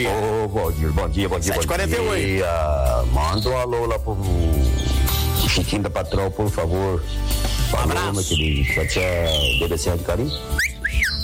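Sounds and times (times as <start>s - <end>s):
speech: 0.0s - 11.0s
cockatiel whistling: 8.2s - 11.2s.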